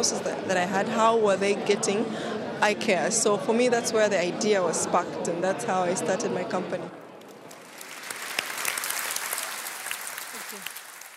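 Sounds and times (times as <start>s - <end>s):
speech: 0.0s - 7.0s
friendly applause from conference audience: 7.3s - 11.1s.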